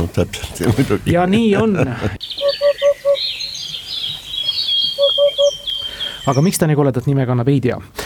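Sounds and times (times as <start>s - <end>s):
speech: 0.0s - 2.4s, 6.3s - 8.0s
hoopoe low hollow oop call: 2.2s - 6.6s
insects buzzing: 2.2s - 6.6s
higher birdsong: 2.2s - 6.9s.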